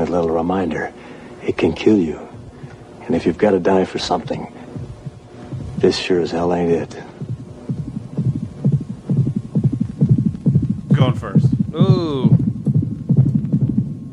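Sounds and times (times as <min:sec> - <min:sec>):
heavy heartbeat sound effect thudding: 0:00.0 - 0:14.1
speech: 0:00.1 - 0:02.3, 0:03.1 - 0:04.6, 0:05.8 - 0:07.2, 0:11.0 - 0:12.4.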